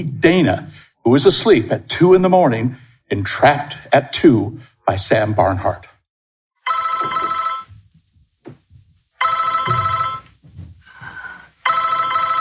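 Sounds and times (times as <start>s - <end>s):
speech: 0.0s - 5.9s
telephone bell ringing: 6.6s - 7.7s, 9.2s - 10.3s, 11.6s - 12.3s
low thumps: 7.2s - 11.2s
faint rustling: 7.4s - 11.7s.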